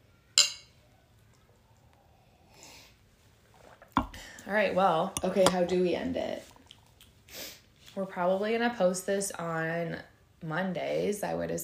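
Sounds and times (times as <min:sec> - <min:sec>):
glasses clinking in a toast: 0:00.4 - 0:00.8
speech: 0:04.5 - 0:06.5, 0:08.0 - 0:11.6.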